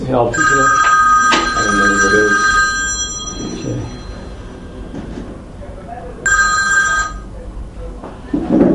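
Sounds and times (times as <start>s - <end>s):
room noise: 0.0s - 8.7s
speech: 0.1s - 0.8s, 1.7s - 2.6s
telephone ringing with an electronic trill: 0.3s - 5.2s, 6.2s - 7.3s
murmur of indistinct voices: 4.6s - 8.7s.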